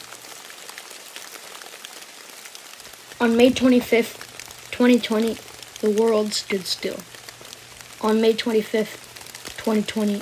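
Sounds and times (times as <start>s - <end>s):
steady rain tapping a surface: 0.0s - 10.2s
speech: 3.2s - 7.2s, 8.0s - 9.0s, 9.6s - 10.2s.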